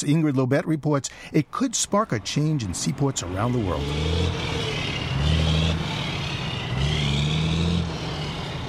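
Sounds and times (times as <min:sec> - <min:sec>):
speech: 0:00.0 - 0:04.8
traffic noise: 0:01.1 - 0:08.6
heavy diesel trucks rumbling around the port of Los Angeles: 0:01.9 - 0:08.6.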